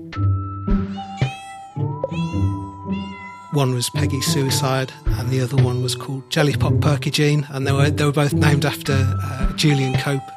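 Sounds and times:
kitten about a year old meowing: 0.8s - 3.6s
speech: 3.6s - 10.3s.

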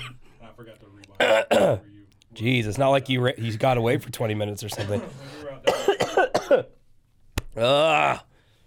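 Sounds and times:
speech: 0.6s - 5.8s, 6.5s - 6.8s, 7.6s - 8.3s
raspy coughs: 1.2s - 1.8s, 4.8s - 6.7s.

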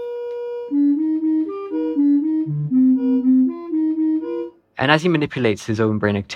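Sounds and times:
electronic tones in a pitch-matching trial: 1.8s - 4.5s
speech: 4.8s - 6.3s.

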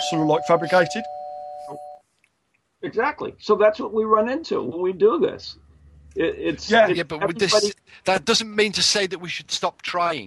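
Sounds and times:
doorbell single steady electronic tone: 0.0s - 2.0s
speech: 0.1s - 1.9s, 2.8s - 10.2s
brief murmur of voice: 7.0s - 7.7s.

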